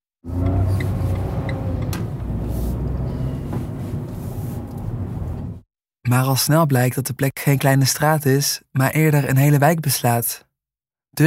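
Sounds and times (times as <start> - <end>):
speech: 0.2 - 1.0, 6.1 - 10.5
car engine and road noise heard from inside the vehicle: 0.2 - 5.6.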